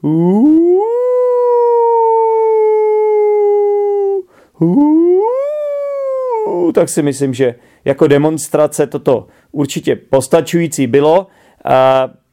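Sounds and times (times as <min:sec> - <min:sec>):
speech: 0:00.0 - 0:00.6, 0:04.6 - 0:05.0, 0:06.7 - 0:12.2
person imitating a she-wolf howling at the moon: 0:00.0 - 0:06.8
brief breath: 0:04.3 - 0:04.6, 0:07.6 - 0:07.9, 0:09.3 - 0:09.6, 0:11.3 - 0:11.6.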